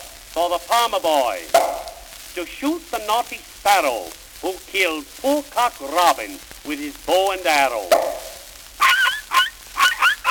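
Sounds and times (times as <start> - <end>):
speech: 0.4 - 1.7, 2.4 - 8.2
voice imitating a toy dog barking: 7.9 - 10.2.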